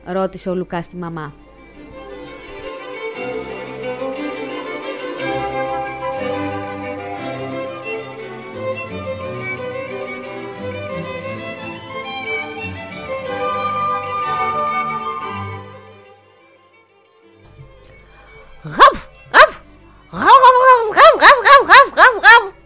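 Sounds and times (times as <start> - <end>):
speech: 0.0 - 1.4
dog barking: 18.7 - 19.6, 20.2 - 22.6.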